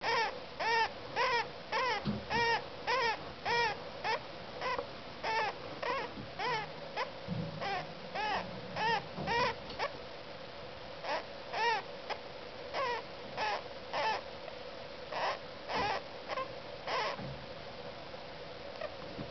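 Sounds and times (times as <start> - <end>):
squeaky breathing: 0.0 - 10.0, 11.0 - 14.3, 15.1 - 17.2.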